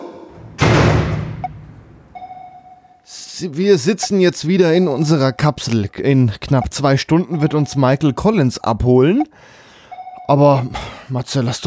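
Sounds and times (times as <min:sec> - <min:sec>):
door shut with heavy booming thud: 0:00.3 - 0:02.2
speech: 0:03.1 - 0:09.6, 0:10.3 - 0:11.6.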